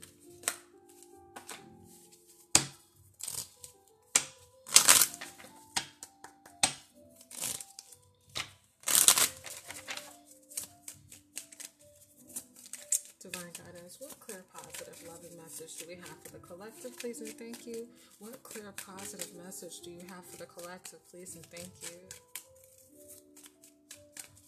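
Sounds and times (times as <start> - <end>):
goddess oracle cards being shuffled by hand: 0.0 - 24.4
speech: 13.4 - 22.2.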